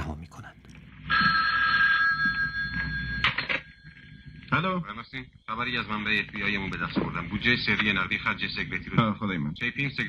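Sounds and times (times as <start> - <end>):
telephone bell ringing in an apartment: 1.0 - 4.3
speech: 4.6 - 10.0.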